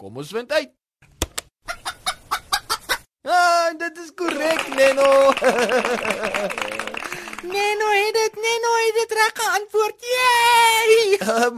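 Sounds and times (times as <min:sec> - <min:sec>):
speech: 0:00.0 - 0:00.8, 0:03.2 - 0:06.8, 0:07.4 - 0:11.5
chicken clucking: 0:01.6 - 0:03.0
laughter: 0:04.3 - 0:07.5.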